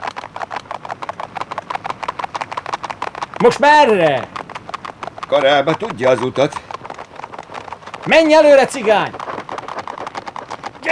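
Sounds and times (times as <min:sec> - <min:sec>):
horses' hooves clip-clopping: 0:00.0 - 0:10.9
speech: 0:03.4 - 0:04.3, 0:05.3 - 0:06.6, 0:08.0 - 0:09.2.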